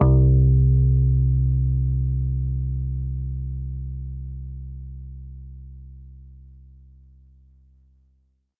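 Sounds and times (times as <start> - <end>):
picked bass note C2: 0.0 - 6.0.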